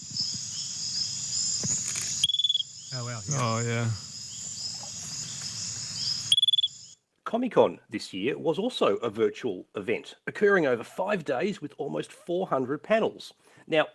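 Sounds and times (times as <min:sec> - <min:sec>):
chorus of night insects: 0:00.0 - 0:07.0
small rare frog peeping call: 0:00.0 - 0:07.0
speech: 0:02.9 - 0:04.1, 0:07.3 - 0:13.9
excited murmured voices: 0:03.0 - 0:04.1.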